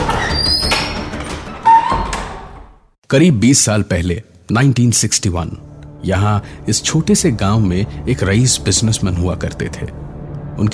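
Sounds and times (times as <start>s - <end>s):
heavy old door creaking slowly shut: 0.0s - 3.0s
speech: 3.1s - 10.7s.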